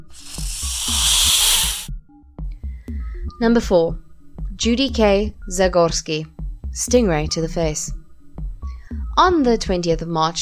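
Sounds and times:
loud sustained snake hiss: 0.1s - 1.9s
speech: 3.4s - 8.0s, 9.2s - 10.4s.

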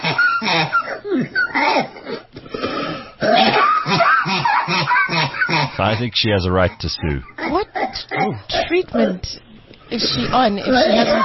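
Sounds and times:
speech: 0.4s - 2.0s, 5.8s - 11.2s
woman coughing and clearing her throat: 3.2s - 5.8s, 7.4s - 9.2s, 10.0s - 11.2s.

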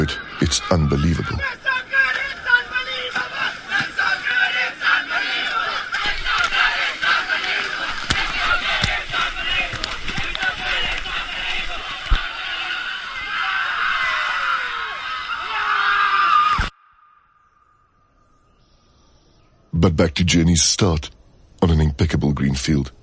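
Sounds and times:
speech: 0.0s - 1.6s, 19.9s - 23.0s
crowd of excited people shouting, laughing and cheering while sprinting into the sea: 0.0s - 17.1s.

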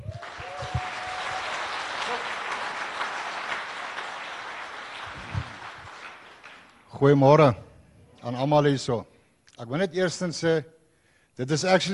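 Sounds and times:
audience applause at a church revival service: 0.0s - 6.7s
speech: 7.0s - 7.6s, 8.2s - 10.8s, 11.4s - 11.9s.

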